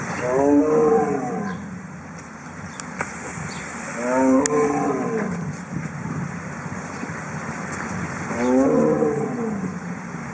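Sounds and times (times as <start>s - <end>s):
Siberian tiger roaring: 0.2s - 1.8s, 3.8s - 5.6s, 8.2s - 9.9s.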